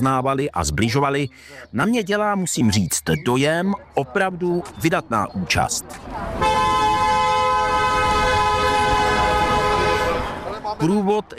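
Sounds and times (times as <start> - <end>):
speech: 0.0 - 6.7, 10.8 - 11.3
traffic rumble: 0.0 - 11.3
car horn blaring as passing cars honk at a procession: 6.4 - 10.6.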